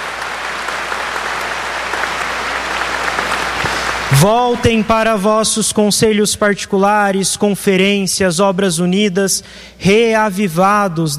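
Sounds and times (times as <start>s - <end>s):
large audience applauding: 0.0s - 5.1s
speech: 4.1s - 11.1s.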